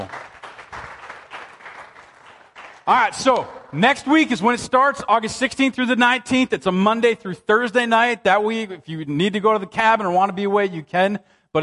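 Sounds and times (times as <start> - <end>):
crowd applauding: 0.0 - 3.8
speech: 2.9 - 11.6.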